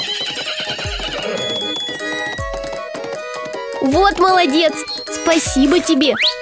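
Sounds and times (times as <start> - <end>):
hooves clip-clopping: 0.0 - 6.0
horses neighing and whinnying: 0.1 - 3.0
speech: 3.8 - 6.3.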